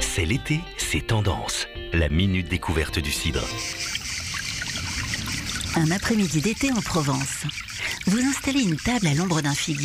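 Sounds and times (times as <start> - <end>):
speech: 0.1 - 3.9, 5.7 - 9.8
water trickling from a fountain on a summer afternoon in Provence: 3.0 - 9.8.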